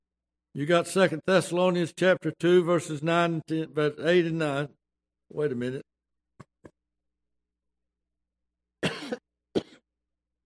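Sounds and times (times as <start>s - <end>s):
speech: 0.6s - 5.9s
dry coughing from a dry throat: 8.8s - 9.9s.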